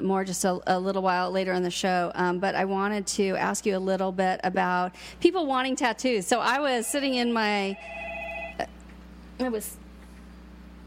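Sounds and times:
speech: 0.0 - 8.7, 9.4 - 9.8
telephone ringing with electronic trill: 6.8 - 8.8.

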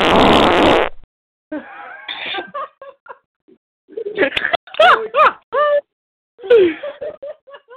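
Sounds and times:
loud blaring fart sound effect: 0.0 - 1.0
people giggling and laughing: 1.5 - 3.2, 3.9 - 5.8, 6.5 - 7.7.

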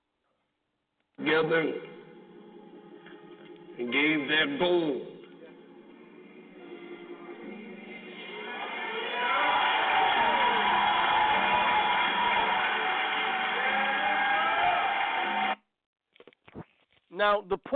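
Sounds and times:
speech: 1.2 - 1.9, 3.8 - 5.1, 17.2 - 17.7
large crowd screaming and shouting excitedly: 8.0 - 15.6.

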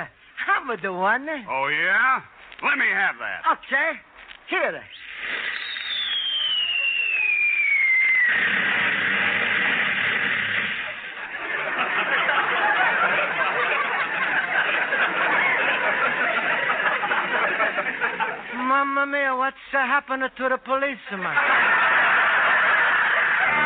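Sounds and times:
speech: 0.0 - 5.0, 18.7 - 21.8
dense run of rapid crackling firecracker pops: 4.2 - 11.0
descending firework whistle: 4.9 - 9.7
loud firecracker burst: 4.9 - 11.5
laughter: 10.8 - 18.6, 21.2 - 23.6.

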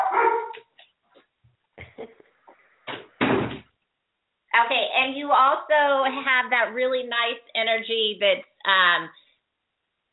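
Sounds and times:
dog barking behind a door: 0.0 - 0.6
heavy thud: 2.9 - 3.7
speech: 5.3 - 9.2.

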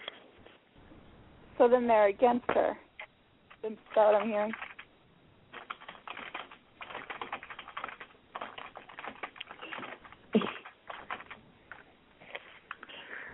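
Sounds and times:
speech: 1.6 - 2.8, 3.6 - 4.6
fingers typing on a computer keyboard: 3.9 - 4.9, 5.5 - 11.9.

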